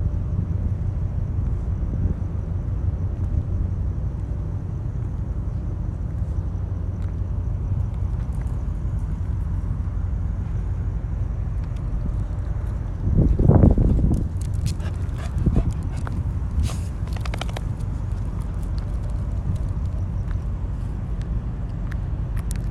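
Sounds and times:
steady low rumble of wind: 0:00.0 - 0:22.6
young dog's pattering footsteps in a parking lot before sunrise: 0:13.6 - 0:20.5
young dog sniffing: 0:14.6 - 0:17.7.

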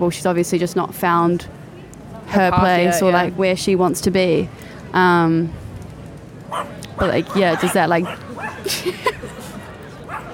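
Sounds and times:
speech: 0:00.0 - 0:01.6, 0:02.3 - 0:05.6, 0:06.5 - 0:09.2
Pomeranian dogs barking in high-pitched yips: 0:06.5 - 0:08.7
laughter: 0:07.0 - 0:10.2.

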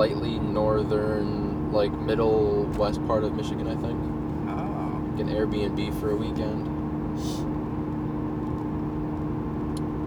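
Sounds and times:
speech: 0:00.0 - 0:04.2, 0:05.2 - 0:07.5
car cruising at 60 miles an hour heard from inside the cabin: 0:00.0 - 0:10.0.

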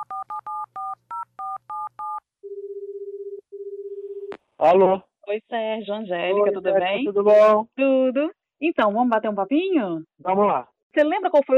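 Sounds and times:
touch-tone dialing beeps placing a phone call: 0:00.0 - 0:04.3
speech: 0:04.6 - 0:11.5.

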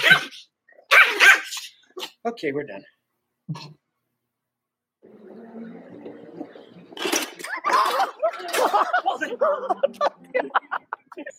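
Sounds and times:
dog barking: 0:00.0 - 0:02.1
speech: 0:02.2 - 0:03.8, 0:08.4 - 0:11.3
laughter: 0:07.4 - 0:11.3.

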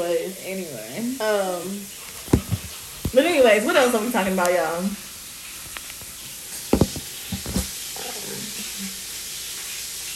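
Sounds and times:
speech: 0:00.0 - 0:02.0, 0:03.1 - 0:05.0
chicken sizzling in a pan: 0:00.0 - 0:10.1
soft knocks: 0:02.3 - 0:02.7, 0:06.7 - 0:07.7.

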